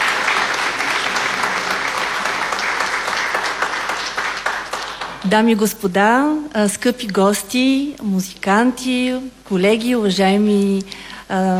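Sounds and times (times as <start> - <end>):
audience applauding a choir singer being introduced: 0.0 - 5.3
speech: 5.2 - 11.5.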